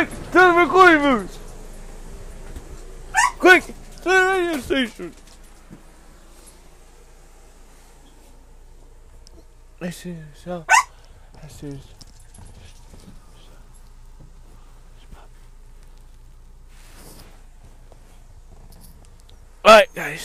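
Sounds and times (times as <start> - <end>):
speech: 0.0 - 1.4, 3.4 - 5.2, 9.8 - 10.8, 11.4 - 12.0, 19.6 - 20.2
dogs barking with high-pitched yaps and yelps: 3.1 - 4.1, 10.6 - 11.1.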